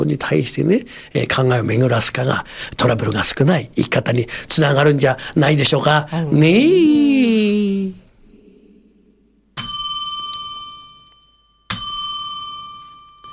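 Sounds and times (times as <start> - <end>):
speech: 0.0 - 7.4
New Year's Eve joya temple bell ringing: 9.6 - 13.3.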